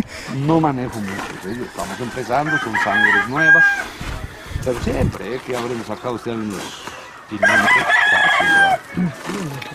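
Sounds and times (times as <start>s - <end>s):
people talking quietly: 0.0s - 9.7s
speech: 0.3s - 9.7s
rooster crowing loudly: 1.0s - 4.0s, 7.4s - 9.0s.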